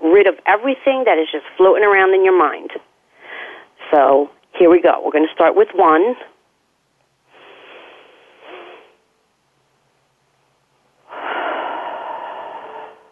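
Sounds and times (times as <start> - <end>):
speech: 0.2 - 2.8, 3.9 - 6.3
slow deep breathing in a guided relaxation exercise: 3.1 - 3.8, 7.3 - 9.0, 11.0 - 13.1.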